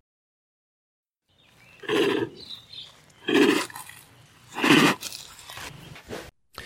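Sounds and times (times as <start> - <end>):
snow leopard friendly chuffing through the nose: 1.8 - 5.7.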